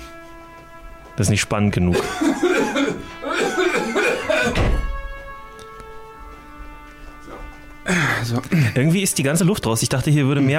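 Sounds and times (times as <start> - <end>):
speech: 1.2 - 4.8, 7.9 - 10.5
person coughing in rough throaty hacks: 1.9 - 4.8, 7.9 - 8.8
low thump: 4.5 - 5.0.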